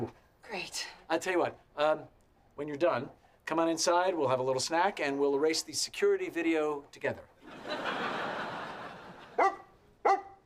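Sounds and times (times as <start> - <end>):
speech: 0.0 - 8.0
steady noise: 0.0 - 10.4
laughter: 7.4 - 9.4
dog barking: 9.4 - 10.4.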